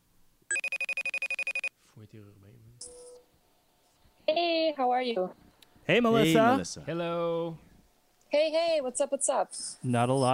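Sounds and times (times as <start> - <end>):
electronic telephone ringing while calling a guest: 0.5 - 1.7
speech: 2.0 - 3.2, 4.3 - 7.6, 8.3 - 10.3.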